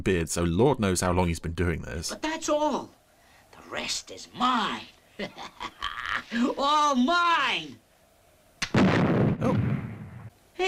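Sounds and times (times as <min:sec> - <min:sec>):
speech: 0:00.0 - 0:03.0, 0:03.7 - 0:07.8, 0:09.4 - 0:09.7
explosions of exploding rock while digging out ore: 0:08.7 - 0:10.3.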